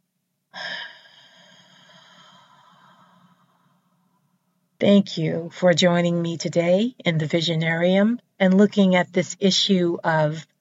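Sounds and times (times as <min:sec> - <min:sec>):
deep breath with long soft exhale: 0:00.5 - 0:04.0
speech: 0:04.8 - 0:10.5.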